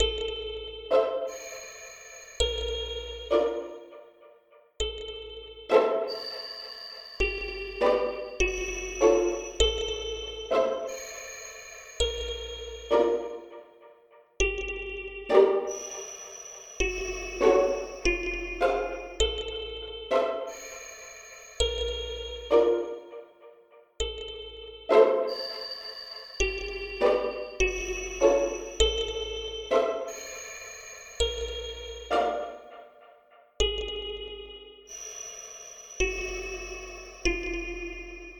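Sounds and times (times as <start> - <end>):
pizzicato synth: 0.0 - 35.3, 36.0 - 38.3.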